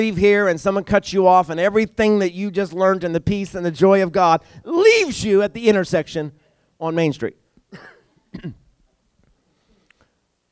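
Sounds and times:
speech: 0.0 - 8.6
person coughing: 7.7 - 8.7.

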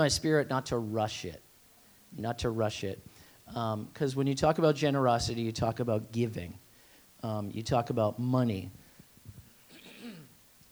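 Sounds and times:
speech: 0.0 - 1.4, 2.1 - 6.6, 7.2 - 8.8
rough throat clearing: 9.7 - 10.4.

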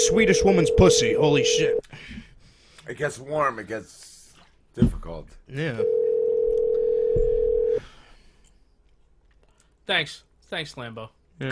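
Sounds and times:
telephone dial tone while placing a call: 0.0 - 1.8, 5.8 - 7.8
speech: 0.1 - 2.2, 2.9 - 4.1, 4.8 - 6.0, 9.9 - 11.5.

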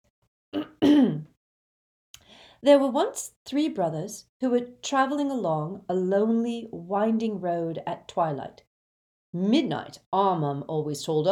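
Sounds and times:
young woman clearing her throat with a little cough: 0.6 - 1.3
speech: 2.6 - 8.7, 9.3 - 11.2.

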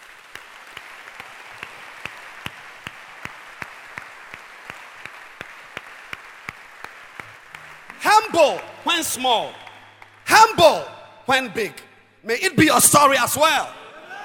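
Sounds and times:
audience applauding with evenly spaced sharp claps: 0.0 - 11.0
soft wash of crowd noise: 1.1 - 12.1
speech: 8.3 - 9.6, 10.6 - 13.8.

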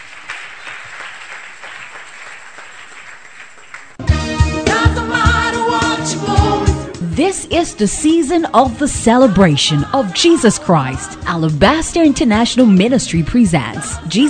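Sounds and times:
large audience clapping hands: 0.0 - 4.2
loud music with singing: 4.0 - 14.2
speech: 7.2 - 14.2.

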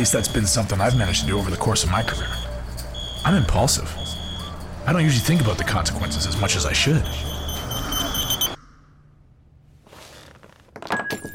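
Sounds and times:
speech: 0.0 - 2.5, 3.2 - 4.2, 4.8 - 7.3
phone alarm beeping: 0.0 - 8.6.

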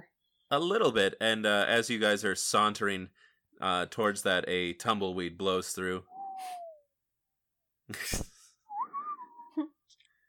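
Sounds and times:
speech: 0.5 - 6.6, 7.9 - 8.3
person whistling an eerie Western-style ghost-town tune: 6.1 - 6.8, 8.7 - 9.7.

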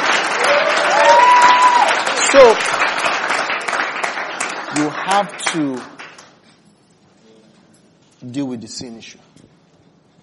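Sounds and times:
audience clapping in dense applause: 0.0 - 6.4
speech: 2.4 - 2.8, 4.8 - 5.9, 8.2 - 9.4.

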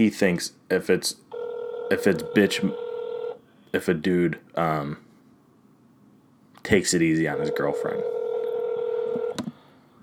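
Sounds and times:
speech: 0.0 - 1.3, 1.9 - 2.8, 3.7 - 5.0, 6.6 - 8.2
electronic phone tone of a call placed on speaker: 1.3 - 3.4, 7.3 - 9.4.

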